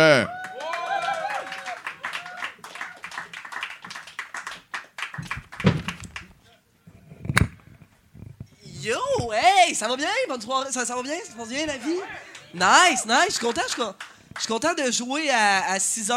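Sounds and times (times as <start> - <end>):
audience cheers: 0.0 - 3.9
audience applause: 0.3 - 6.3, 12.0 - 14.5
speech: 9.3 - 16.1.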